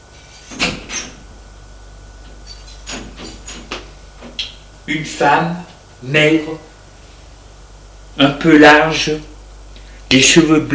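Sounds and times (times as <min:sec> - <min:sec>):
low steady hum: 0:00.0 - 0:10.7
apartment door creaking and knocking as it swings: 0:00.4 - 0:01.2, 0:02.3 - 0:04.6
speech: 0:04.9 - 0:06.7, 0:08.2 - 0:09.3, 0:10.1 - 0:10.7.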